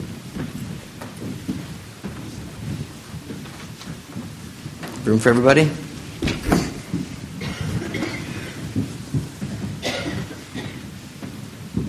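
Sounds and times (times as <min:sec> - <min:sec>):
rain falling: 0:00.0 - 0:11.8
speech: 0:05.0 - 0:05.8
thunder: 0:05.7 - 0:10.8.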